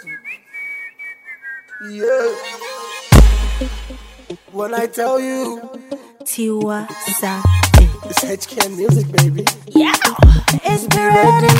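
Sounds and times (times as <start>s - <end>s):
short high whistled notes in a melodic pattern: 0.0s - 4.4s
speech: 1.8s - 2.8s, 3.6s - 11.5s
musical backing: 2.4s - 4.8s, 7.4s - 11.5s
loud booming hit: 3.1s - 4.3s.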